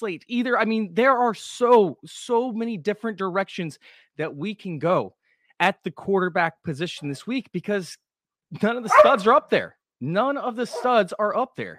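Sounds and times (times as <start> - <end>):
speech: 0.0 - 11.7
dogs barking: 8.9 - 9.3, 10.7 - 11.0.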